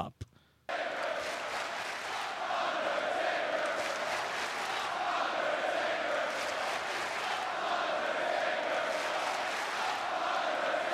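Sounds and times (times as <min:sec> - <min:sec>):
huge wrestling arena crowd roaring and chanting: 0:00.7 - 0:10.9.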